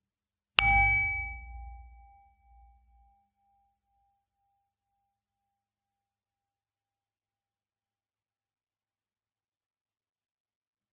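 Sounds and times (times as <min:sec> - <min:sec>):
bell ringing: 0:00.6 - 0:02.6.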